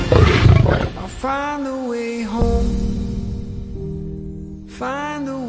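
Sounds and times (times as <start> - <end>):
lion roaring: 0.1 - 1.1
speech: 1.2 - 3.0, 4.8 - 5.4.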